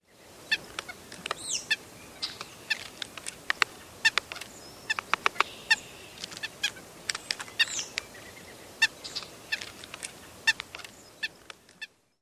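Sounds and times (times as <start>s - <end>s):
White-breasted Nuthatch ik and ik-up calls: 0.2s - 12.0s
White-breasted Nuthatch tapping: 2.2s - 8.1s, 9.1s - 11.9s.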